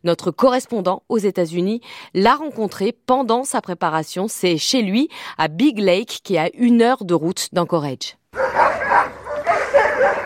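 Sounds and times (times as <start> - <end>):
speech: 0.0 - 9.0
sled dogs barking and yipping at kennels in Big Lake near Anchorage: 8.4 - 10.2.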